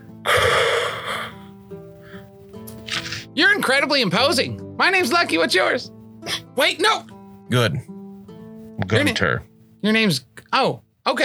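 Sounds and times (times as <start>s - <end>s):
voice imitating a big man's heavy hissing breathing inside a helmet: 0.2s - 2.3s
speech: 3.4s - 7.9s, 8.8s - 11.2s.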